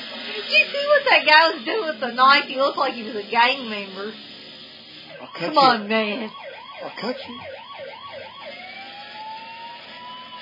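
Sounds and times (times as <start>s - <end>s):
speech: 0.4s - 4.3s, 5.2s - 7.6s
small ambulance siren: 4.9s - 10.4s.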